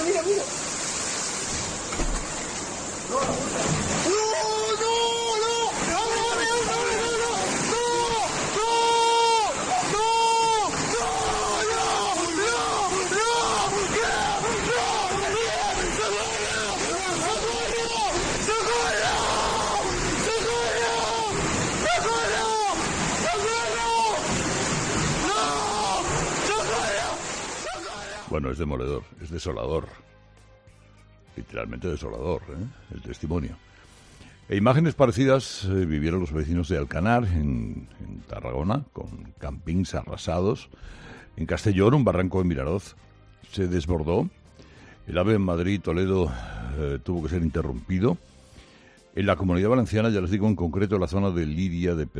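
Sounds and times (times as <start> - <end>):
floodwater roaring through a house wall: 0.0 - 28.3
people shouting and crying out in panic: 4.0 - 28.3
speech: 28.6 - 30.0, 31.4 - 33.7, 34.5 - 44.4, 45.1 - 48.3, 49.2 - 52.1.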